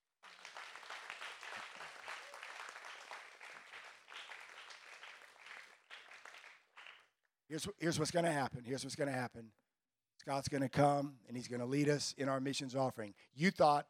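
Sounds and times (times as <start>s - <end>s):
large crowd applauding: 0.0s - 7.1s
speech: 7.5s - 9.6s, 10.2s - 13.8s.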